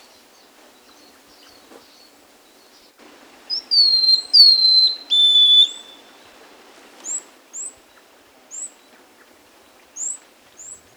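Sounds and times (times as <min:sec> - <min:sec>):
buff-breasted mountain tanager singing in Ecuador: 0:03.5 - 0:06.1.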